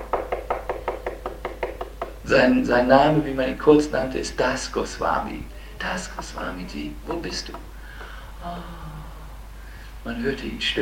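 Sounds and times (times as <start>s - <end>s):
knocking on a door: 0.0s - 2.3s, 5.8s - 8.2s
low hum: 2.0s - 10.7s
speech: 2.3s - 7.7s, 8.4s - 8.8s, 10.0s - 10.7s.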